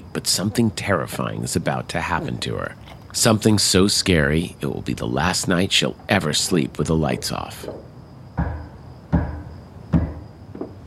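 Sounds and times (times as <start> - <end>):
speech: 0.2 - 8.6
heavy hollow knocks or footfalls down a hallway: 7.1 - 10.8.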